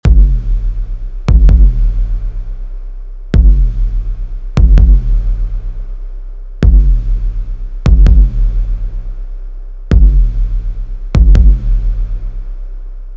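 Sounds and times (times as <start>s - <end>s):
compressed kick drum: 0.0s - 2.2s, 3.4s - 5.5s, 6.6s - 8.8s, 9.9s - 12.1s
compressed sub bass: 0.0s - 13.1s.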